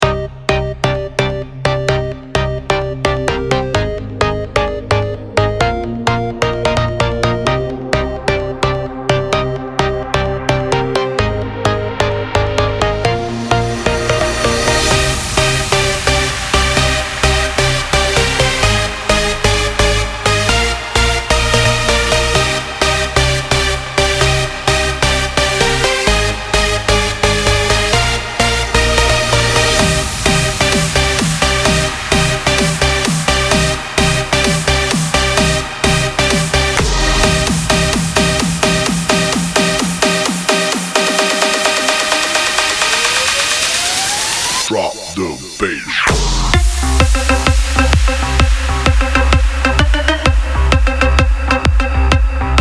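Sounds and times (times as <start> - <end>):
bass drop: 0.0 - 52.5.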